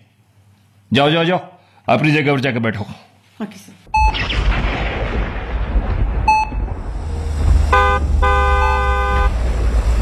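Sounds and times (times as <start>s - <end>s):
speech: 0.9s - 3.8s
steady low rumble of traffic or an engine: 5.1s - 10.0s
car horn honking: 7.7s - 9.4s.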